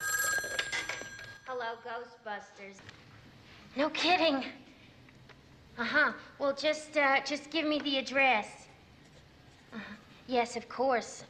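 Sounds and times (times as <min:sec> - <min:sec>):
telephone metallic bell ringing: 0:00.0 - 0:01.5
speech: 0:01.6 - 0:03.0, 0:03.7 - 0:04.6, 0:05.8 - 0:08.6, 0:09.7 - 0:11.2.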